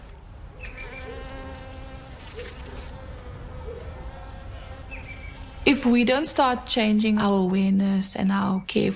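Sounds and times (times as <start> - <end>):
honeybees buzzing around a backyard hive: 0.6 - 7.4
speech: 5.7 - 8.9.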